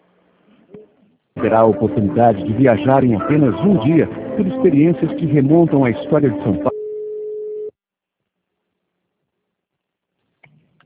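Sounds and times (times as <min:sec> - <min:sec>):
speech: 0:01.4 - 0:06.7
telephone line tone while a call is transferred to an extension: 0:06.7 - 0:07.7.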